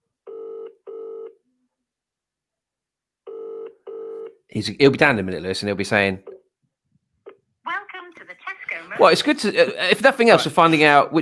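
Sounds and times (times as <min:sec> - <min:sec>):
telephone ringing tone: 0:00.3 - 0:01.4, 0:03.3 - 0:04.4
speech: 0:04.5 - 0:06.3, 0:09.0 - 0:11.2.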